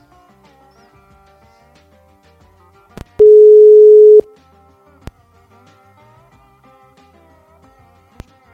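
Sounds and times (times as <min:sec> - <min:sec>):
telephone line tone while placing a call: 0:03.2 - 0:04.3.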